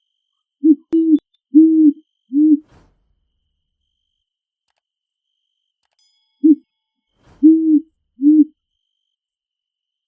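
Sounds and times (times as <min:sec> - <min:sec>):
great horned owl hooting in a big forest: 0:00.6 - 0:02.7, 0:07.4 - 0:08.5.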